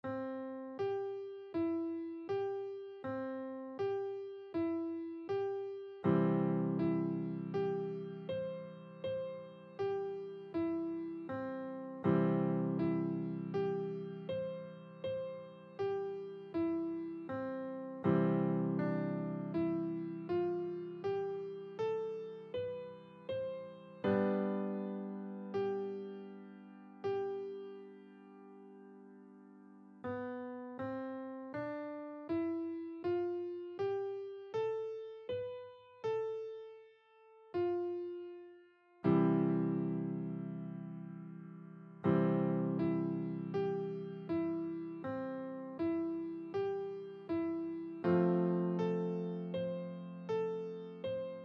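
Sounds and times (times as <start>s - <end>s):
beginner piano scales and arpeggios: 0.0s - 51.4s.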